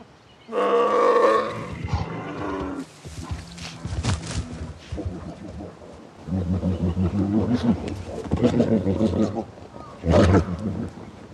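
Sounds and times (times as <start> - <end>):
male bears roaring and growling while fighting rivals: 0.5 - 11.3
heavy scuffle of bear bodies: 1.8 - 5.2.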